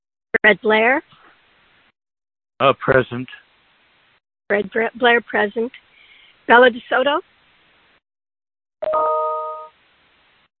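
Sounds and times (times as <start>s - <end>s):
speech: 0.4s - 1.2s, 2.6s - 3.4s, 4.5s - 5.9s, 6.5s - 7.3s, 8.8s - 9.5s
computer notification chime during an online meeting: 8.8s - 9.7s.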